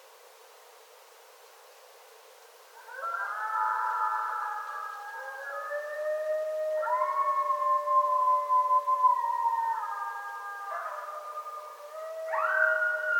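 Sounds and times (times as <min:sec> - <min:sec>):
several coyotes howling: 0:02.8 - 0:13.1.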